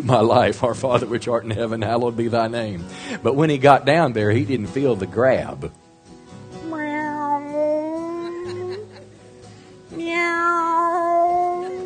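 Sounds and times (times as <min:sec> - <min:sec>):
speech: 0:00.0 - 0:05.8
person's voice imitating cat meows: 0:06.6 - 0:08.9, 0:10.0 - 0:11.8
laughter: 0:08.2 - 0:09.2.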